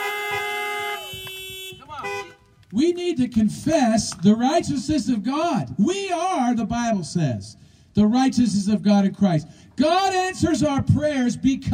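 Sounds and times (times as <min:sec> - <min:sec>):
car horns honking during a church service: 0:00.0 - 0:02.6
speech: 0:02.7 - 0:11.7.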